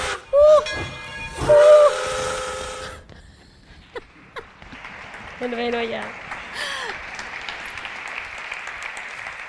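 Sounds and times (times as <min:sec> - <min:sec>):
steam train whistle blasts: 0:00.0 - 0:03.1
rail noise: 0:00.0 - 0:03.7
hissing steam: 0:01.3 - 0:03.1
speech: 0:05.4 - 0:06.7.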